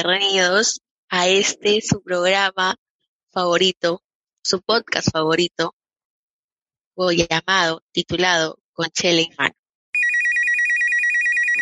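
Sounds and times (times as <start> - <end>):
speech: 0.0 - 2.8, 3.4 - 5.8, 7.0 - 9.6
telephone ringing with rapid trilling electronic warble: 10.0 - 11.5.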